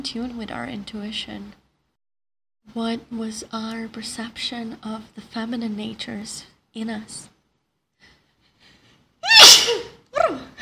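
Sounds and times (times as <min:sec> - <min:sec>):
speech: 0:00.0 - 0:01.6, 0:02.6 - 0:07.3
person sneezing: 0:09.3 - 0:10.0.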